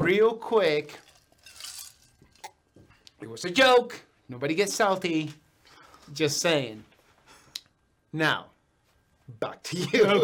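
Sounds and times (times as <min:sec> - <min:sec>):
speech: 0:00.1 - 0:01.1, 0:03.2 - 0:05.4, 0:06.1 - 0:06.9, 0:08.1 - 0:08.5, 0:09.3 - 0:10.2
glasses clinking together in a toast: 0:00.9 - 0:02.6
laughter: 0:09.7 - 0:10.2.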